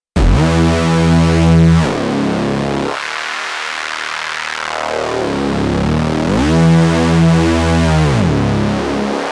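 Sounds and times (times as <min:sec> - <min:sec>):
rude bass: 0:00.1 - 0:03.0, 0:05.2 - 0:09.2.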